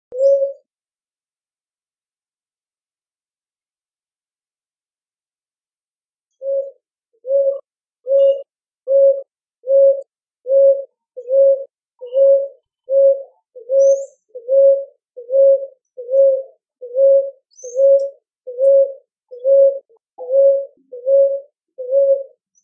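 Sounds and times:
Rolinha roxa calling: 0.1 - 0.6, 6.4 - 22.6.

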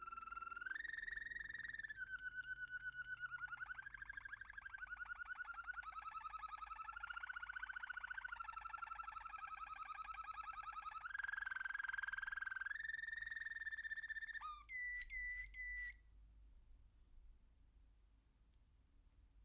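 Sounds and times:
American canary singing a long rolling trill: 0.0 - 16.0.

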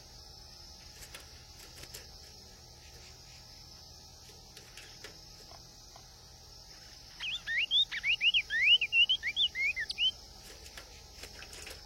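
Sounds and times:
cinnamon tanager song of short slurred whistles: 7.1 - 10.2.

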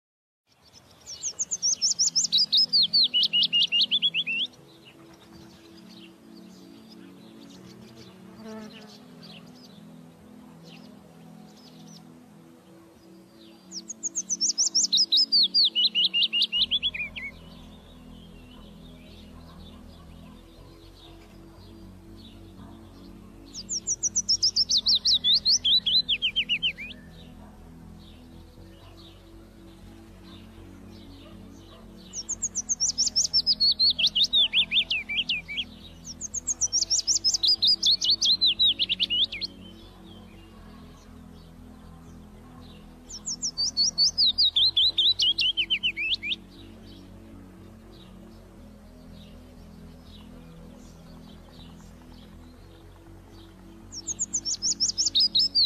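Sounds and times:
common chiffchaff singing: 0.5 - 55.6.

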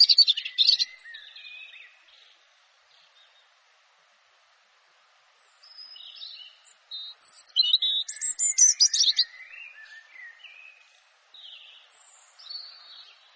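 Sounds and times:
European robin singing: 0.0 - 3.8, 5.3 - 13.3.

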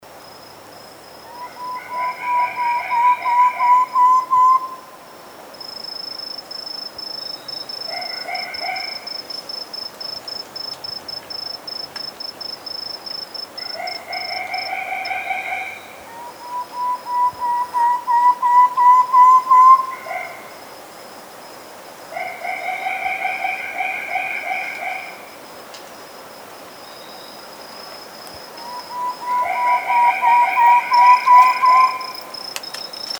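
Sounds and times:
Chestnut-crowned antpitta singing: 1.3 - 4.9, 13.6 - 20.3, 28.6 - 33.1.

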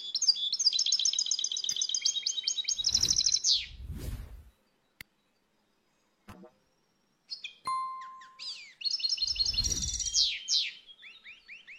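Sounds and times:
finch twittering: 0.0 - 3.8, 7.3 - 11.7.

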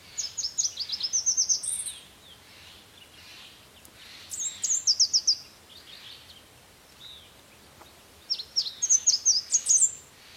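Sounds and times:
quiet background hiss: 0.0 - 10.3
red warbler singing: 0.0 - 10.3.

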